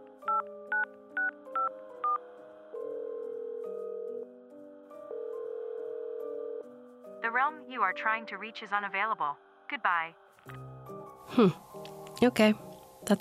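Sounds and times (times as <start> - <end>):
dual-tone telephone keypad beeps: 0.3 - 2.2
long steady telephone tones: 2.8 - 4.4, 5.0 - 6.7
speech: 7.3 - 10.6, 11.4 - 13.1.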